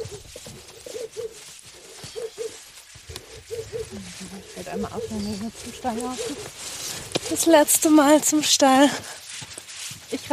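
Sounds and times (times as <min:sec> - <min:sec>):
pigeon or dove cooing: 0:00.0 - 0:07.0
speech: 0:04.6 - 0:06.7, 0:07.3 - 0:09.2, 0:10.1 - 0:10.3.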